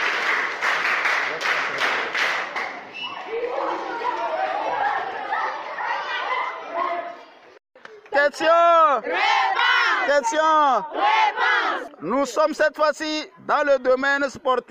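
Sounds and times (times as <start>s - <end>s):
audience bursting into lively applause: 0.0s - 2.8s
crowd of children chattering and calling out: 2.9s - 7.6s
speech: 8.3s - 14.7s.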